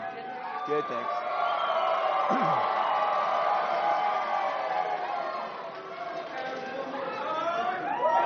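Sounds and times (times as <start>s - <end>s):
local fan crowd roar with overlapping voices and chatter: 0.0s - 8.2s
speech: 0.7s - 1.3s, 2.3s - 2.8s.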